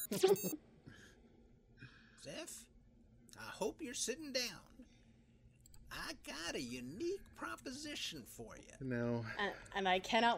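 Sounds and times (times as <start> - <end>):
futuristic phone beeping: 0.0 - 0.6
speech: 0.1 - 0.7, 2.2 - 2.7, 3.3 - 5.0, 5.9 - 10.3.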